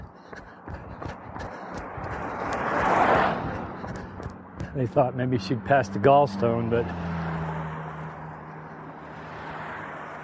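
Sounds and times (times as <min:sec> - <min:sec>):
steady broadband road rumble: 0:00.0 - 0:10.2
car passing along a road: 0:01.8 - 0:04.6, 0:05.4 - 0:10.2
speech: 0:04.8 - 0:07.1.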